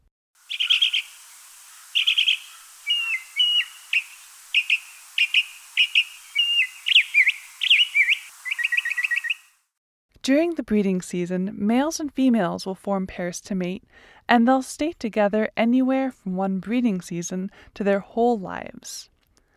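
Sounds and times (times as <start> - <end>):
male Northern Mockingbird singing: 0.5 - 9.5
speech: 10.3 - 19.1.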